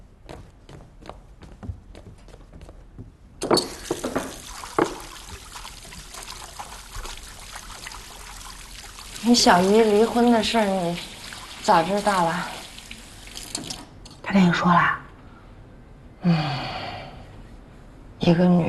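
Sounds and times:
water running from a tap while hands are washed: 0:03.4 - 0:14.2
speech: 0:09.3 - 0:11.1, 0:11.7 - 0:12.6, 0:14.3 - 0:15.0, 0:18.3 - 0:18.6.

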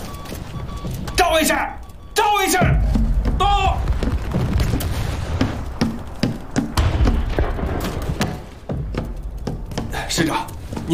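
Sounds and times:
speech: 0:01.3 - 0:03.8, 0:10.2 - 0:10.9
heavy artillery thuds: 0:02.6 - 0:10.9
distant gunshots: 0:03.5 - 0:08.8.

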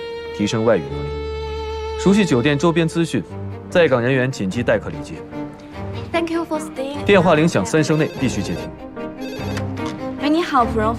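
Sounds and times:
speech: 0:00.4 - 0:01.3, 0:02.0 - 0:08.9, 0:10.6 - 0:10.9
telephone ringing with a bright repeating electronic trill: 0:07.6 - 0:09.7.

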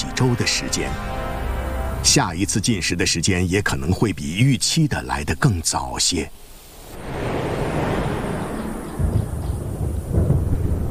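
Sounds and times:
speech: 0:00.2 - 0:01.2, 0:02.0 - 0:07.2
rolling thunder across the plains of a dry savanna: 0:06.8 - 0:10.9.

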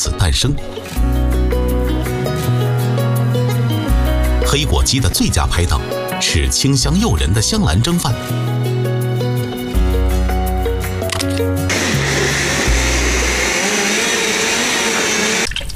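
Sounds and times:
speech: 0:00.0 - 0:01.1, 0:04.5 - 0:08.5
music: 0:00.0 - 0:15.4
kitchen blender whirring blending fresh pandan leaves for juice: 0:11.7 - 0:15.5.

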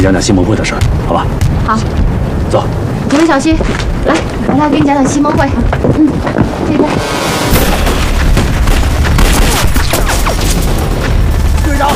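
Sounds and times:
speech: 0:00.0 - 0:07.2
deep booms in a battle: 0:00.0 - 0:11.9
heavy gunfire in a battle: 0:07.4 - 0:11.9.

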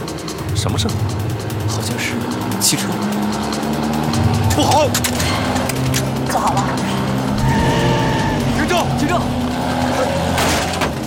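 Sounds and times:
car engine running as the vehicle drives: 0:00.0 - 0:11.0
car squealing skid: 0:00.1 - 0:11.0
faint shouting voices: 0:07.2 - 0:10.3.

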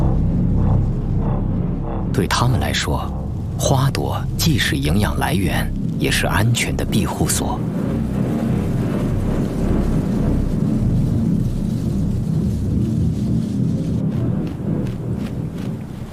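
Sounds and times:
deep thunder rumbling: 0:00.0 - 0:16.1
steady rain hissing: 0:00.0 - 0:16.1
sharp crackles: 0:02.1 - 0:16.1
speech: 0:02.2 - 0:07.8.

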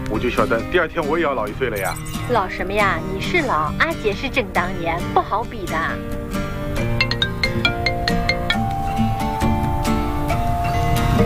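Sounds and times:
speech: 0:00.1 - 0:06.5
phone ringtone for an incoming call: 0:01.8 - 0:03.1, 0:07.0 - 0:11.2.

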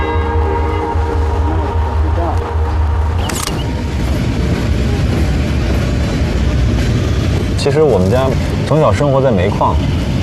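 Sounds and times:
brief horn-like tone from a departing train: 0:00.0 - 0:05.7
departing train rumbling with rattling wagons: 0:00.0 - 0:10.2
speech: 0:07.6 - 0:10.0.

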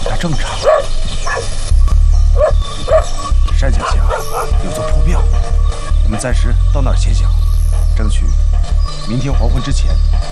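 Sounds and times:
speech: 0:00.2 - 0:00.7, 0:06.1 - 0:07.4, 0:08.0 - 0:10.3
dogs barking in a village: 0:00.3 - 0:01.6, 0:02.3 - 0:05.8
heavy steady low rumble: 0:00.6 - 0:10.3.

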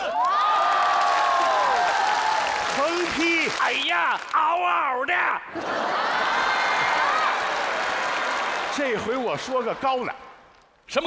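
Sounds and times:
large live crowd at a Chinese New Year stage gala screaming and cheering: 0:00.0 - 0:03.8, 0:05.6 - 0:09.1
speech: 0:03.7 - 0:06.7, 0:08.8 - 0:10.2, 0:10.9 - 0:11.0.

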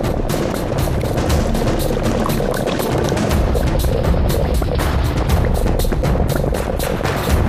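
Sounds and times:
pot of millet porridge with peanuts, glass noodles and tofu skin bubbling at a rolling boil: 0:00.0 - 0:07.4.

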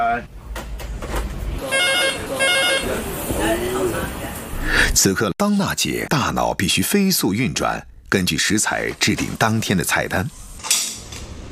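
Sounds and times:
speech: 0:00.2 - 0:00.4, 0:04.7 - 0:10.8
busy noise: 0:00.3 - 0:05.0
restaurant reservation telephone ringing: 0:01.6 - 0:02.9.

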